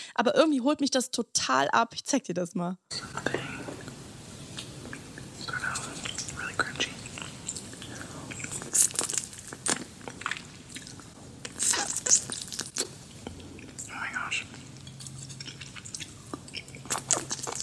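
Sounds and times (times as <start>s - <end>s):
speech: 0.2s - 3.4s
crisp crackles and crinkles: 5.4s - 17.6s
crunchy chewing and biting: 5.6s - 13.9s, 14.6s - 17.6s.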